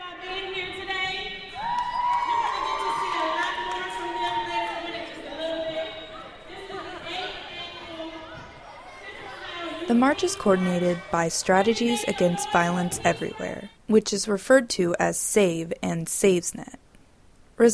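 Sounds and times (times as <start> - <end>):
lively crowd chattering and cheering in a large school gym: 0.0 - 13.8
excited shouts: 1.6 - 13.1
speech: 9.9 - 16.8, 17.6 - 17.7.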